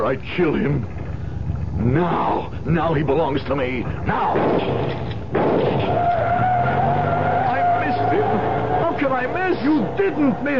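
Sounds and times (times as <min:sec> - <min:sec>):
speech: 0:00.0 - 0:01.0, 0:01.8 - 0:06.5, 0:09.0 - 0:10.5
armor-plated car with bulletproof glass roaring past: 0:05.4 - 0:10.5
tire squeal: 0:05.6 - 0:10.5.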